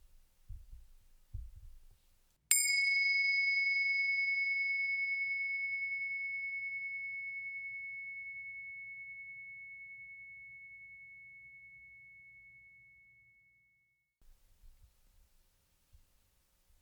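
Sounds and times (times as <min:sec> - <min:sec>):
soft low thumps: 0:00.0 - 0:02.1
meditation bell ringing: 0:02.5 - 0:13.3.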